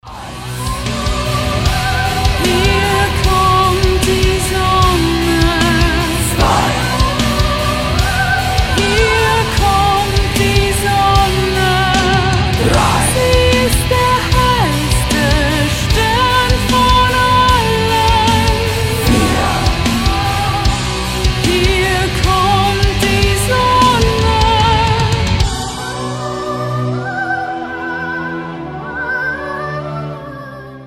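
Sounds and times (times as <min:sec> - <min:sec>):
woman singing a cover: 0:00.1 - 0:30.8
man singing a cover: 0:02.4 - 0:07.8, 0:08.8 - 0:16.0, 0:18.3 - 0:25.0.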